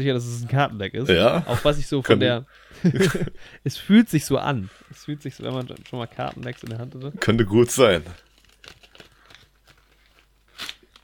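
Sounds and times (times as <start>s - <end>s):
speech: 0.0s - 8.8s
laughter: 1.1s - 3.4s
wrapping paper being torn off a gift: 5.4s - 7.2s, 7.8s - 11.0s.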